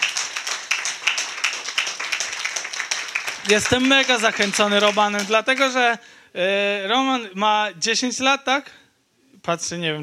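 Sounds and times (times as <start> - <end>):
crowd applauding for a performer: 0.0 - 5.8
speech: 3.4 - 8.8, 9.4 - 10.0.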